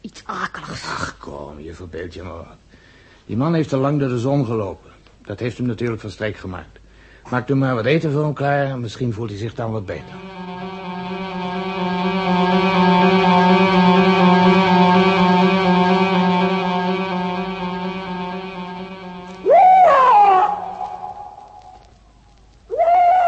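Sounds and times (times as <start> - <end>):
speech: 1.6 - 2.7, 3.3 - 10.4
steady mechanical drone humming: 10.0 - 21.9
owl screech sliding downward: 19.4 - 21.9, 22.7 - 23.2.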